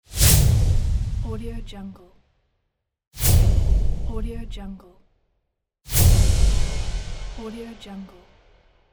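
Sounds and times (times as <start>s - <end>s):
whoosh accent: 0.0s - 1.8s, 3.2s - 4.7s, 5.9s - 8.8s.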